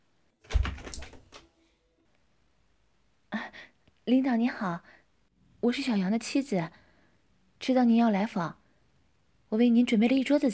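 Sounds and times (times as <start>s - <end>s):
door being opened with a low thump: 0.4s - 1.5s
speech: 4.1s - 5.0s, 5.6s - 6.8s, 7.6s - 8.6s, 9.5s - 10.5s.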